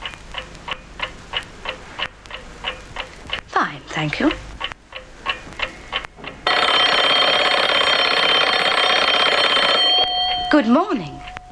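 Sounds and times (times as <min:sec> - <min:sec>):
metallic alarm clock ticking: 0:00.0 - 0:11.5
speech: 0:04.0 - 0:04.5, 0:10.5 - 0:11.2
alarm clock loud metallic ringing: 0:06.4 - 0:11.5.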